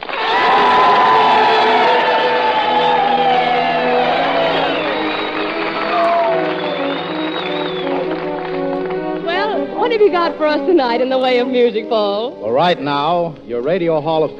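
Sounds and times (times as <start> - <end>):
audience shouts: 0.0 - 7.2
large audience cheering for a musician: 0.0 - 9.7
dense audience clapping: 0.0 - 10.2
shrill whistles from an audience: 0.3 - 8.2
speech: 10.4 - 14.3.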